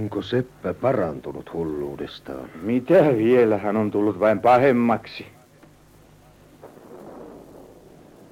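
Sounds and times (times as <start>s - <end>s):
speech: 0.0s - 5.4s
thunder rumbling: 6.6s - 8.3s.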